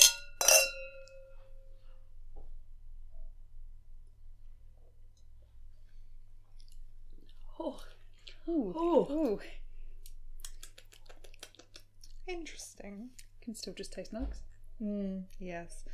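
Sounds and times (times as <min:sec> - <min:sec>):
glasses clinking in a toast with vegan wine: 0:00.0 - 0:01.4
quiet low hum: 0:00.0 - 0:15.9
speech: 0:08.5 - 0:09.6, 0:12.3 - 0:15.9.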